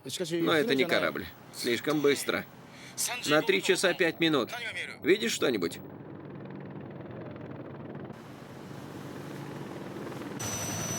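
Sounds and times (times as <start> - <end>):
speech: 0.0 - 6.0
low-flying attack helicopter rotor chop: 5.1 - 10.9.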